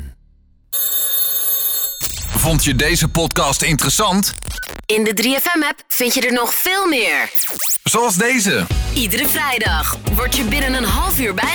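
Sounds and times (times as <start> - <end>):
telephone bell ringing with a bright metallic trill: 0.8 - 2.3
speech: 2.4 - 11.5.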